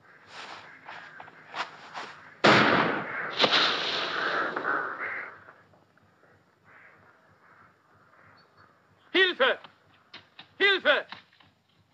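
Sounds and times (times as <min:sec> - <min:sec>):
soft rustling and shuffling: 0:00.3 - 0:02.3
rifle gunshot: 0:02.4 - 0:05.0.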